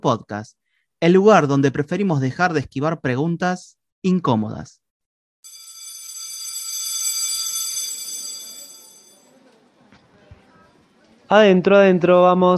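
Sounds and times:
speech: 0:00.0 - 0:04.8, 0:11.3 - 0:12.5
electric school bell ringing for end of recess: 0:05.5 - 0:09.4.

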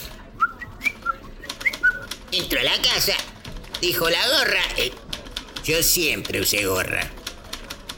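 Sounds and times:
person whistling a short tune while walking: 0:00.4 - 0:02.1
speech: 0:02.4 - 0:05.0, 0:05.6 - 0:07.2.

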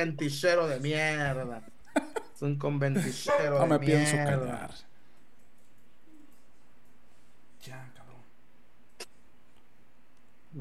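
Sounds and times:
speech: 0:00.0 - 0:04.9, 0:07.6 - 0:07.9
dog barking: 0:03.2 - 0:03.9.

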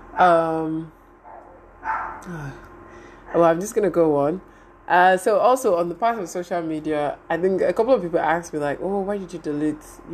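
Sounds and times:
speech: 0:00.2 - 0:01.0, 0:02.2 - 0:02.7, 0:03.3 - 0:10.1
neighbor's dog barking: 0:01.2 - 0:02.2.

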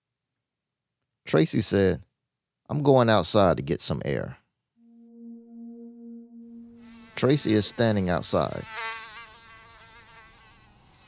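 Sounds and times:
speech: 0:01.3 - 0:02.1, 0:02.7 - 0:04.4, 0:07.2 - 0:09.0
mosquito buzzing: 0:04.8 - 0:11.0.

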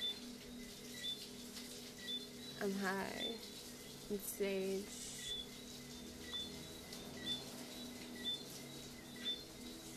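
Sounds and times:
faint high chirps: 0:00.0 - 0:09.9
soft steady rain falling at night: 0:00.0 - 0:09.9
speech: 0:02.6 - 0:03.5, 0:04.1 - 0:05.0.

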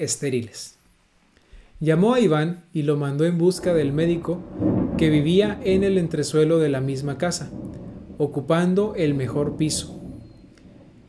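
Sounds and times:
speech: 0:00.0 - 0:00.8, 0:01.8 - 0:10.0
faint hiss of rain: 0:00.0 - 0:11.0
low rumble of thunder during a rainstorm: 0:03.5 - 0:11.0.

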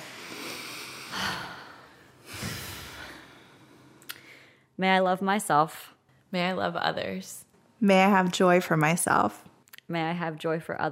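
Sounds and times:
big deep breaths: 0:00.0 - 0:04.8
speech: 0:04.8 - 0:10.9.

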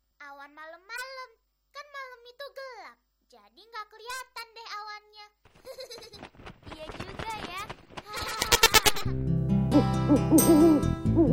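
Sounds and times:
speech: 0:02.3 - 0:07.6, 0:09.0 - 0:11.3
laughter: 0:05.6 - 0:06.4, 0:08.1 - 0:09.2
owl hooting: 0:09.7 - 0:11.3.

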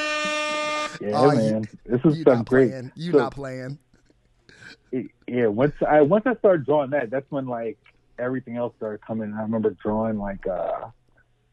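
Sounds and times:
blaring brassy air horn sound effect: 0:00.0 - 0:01.6
speech: 0:01.0 - 0:03.8, 0:04.9 - 0:11.0.

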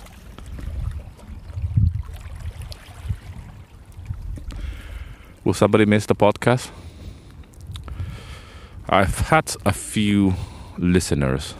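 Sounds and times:
gentle sea waves lapping against the shore: 0:00.0 - 0:05.4
speech: 0:05.4 - 0:06.8, 0:08.9 - 0:11.5.

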